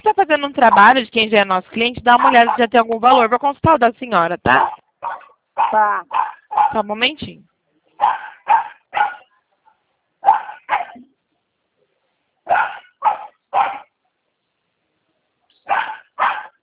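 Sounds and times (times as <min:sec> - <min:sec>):
speech: 0:00.3 - 0:09.1
dog barking: 0:02.1 - 0:02.7, 0:04.6 - 0:06.8, 0:08.0 - 0:09.3, 0:10.2 - 0:11.1, 0:12.5 - 0:14.0, 0:15.6 - 0:16.6.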